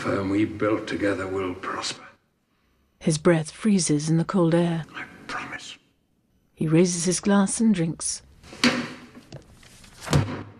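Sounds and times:
speech: 0:00.0 - 0:02.1, 0:03.0 - 0:05.8, 0:06.6 - 0:08.8
book slamming shut: 0:08.5 - 0:10.5.

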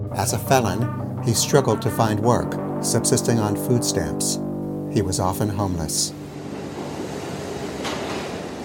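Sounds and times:
speech: 0:00.2 - 0:06.2
subway train rumbling along the tracks: 0:06.2 - 0:08.6.

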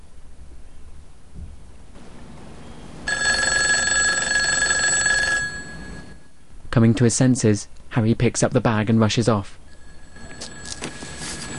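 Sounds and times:
quiet outdoor ambience: 0:00.0 - 0:11.5
payphone electric bell ringing in a phone booth: 0:03.1 - 0:06.3, 0:09.6 - 0:11.5
speech: 0:06.8 - 0:09.6.

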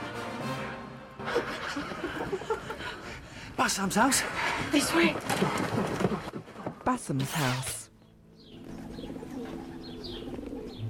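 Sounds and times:
laughter: 0:01.2 - 0:03.2
speech: 0:03.6 - 0:06.1, 0:06.9 - 0:07.8
pigeons cooing: 0:08.4 - 0:10.8.

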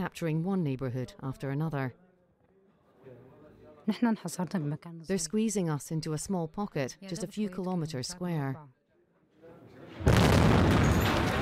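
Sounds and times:
speech: 0:00.0 - 0:02.0, 0:03.9 - 0:08.8
powerful explosion blast shaking a building during fighting over a neighborhood: 0:10.1 - 0:11.4.

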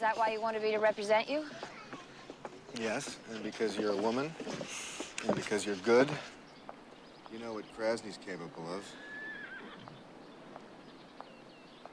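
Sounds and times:
speech: 0:00.0 - 0:01.6, 0:02.7 - 0:06.4, 0:07.3 - 0:09.1
white horse hoof clops in a corral: 0:00.0 - 0:11.9
white horse whinnying in a corral: 0:08.8 - 0:10.0.

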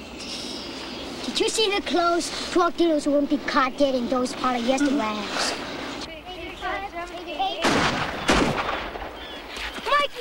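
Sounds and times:
speech: 0:01.4 - 0:05.6
gunshots: 0:07.6 - 0:09.3.

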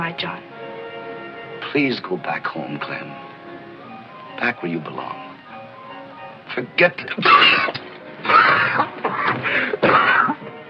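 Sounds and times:
speech: 0:00.0 - 0:00.5, 0:01.7 - 0:03.3, 0:04.4 - 0:05.3, 0:06.6 - 0:10.1
man coughing and choking: 0:07.2 - 0:10.4.

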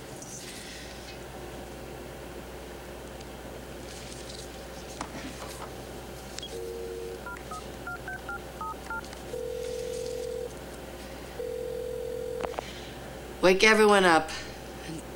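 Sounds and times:
telephone keypad beeps: 0:06.4 - 0:10.5, 0:11.4 - 0:12.6
speech: 0:13.5 - 0:14.4.

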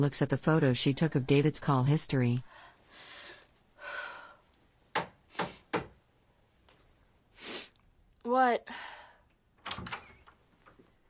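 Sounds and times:
speech: 0:00.0 - 0:02.6, 0:08.4 - 0:08.8
low hiss: 0:00.0 - 0:11.0
room door opening or shutting: 0:09.6 - 0:10.4.

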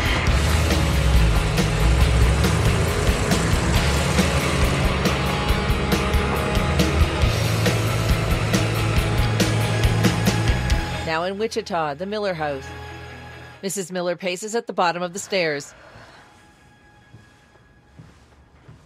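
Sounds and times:
steady broadband road noise: 0:00.0 - 0:10.8
truck engine running as the vehicle gets underway: 0:00.0 - 0:11.1
speech: 0:11.2 - 0:12.8, 0:13.6 - 0:15.9.

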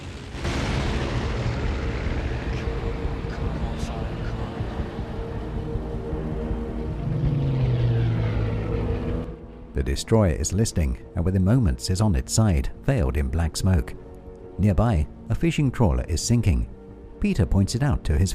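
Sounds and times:
Spitfire fighter and Heinkel bomber engines roaring: 0:00.0 - 0:09.8
speech: 0:09.8 - 0:14.0, 0:14.6 - 0:18.3.

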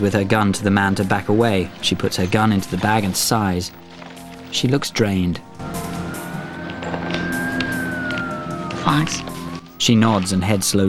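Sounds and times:
speech: 0:00.0 - 0:03.8, 0:04.5 - 0:05.8, 0:09.0 - 0:10.8
long sustained whining tone: 0:00.0 - 0:10.8
two police car engines rumbling while pulling up: 0:00.0 - 0:10.8.

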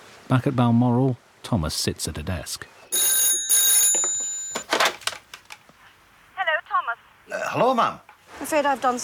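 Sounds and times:
speech: 0:00.3 - 0:02.8, 0:07.6 - 0:09.0
number dialled on a mobile phone: 0:02.9 - 0:04.7
telephone ringing with an electronic trill: 0:02.9 - 0:04.7
rustling and clattering: 0:03.8 - 0:05.7.

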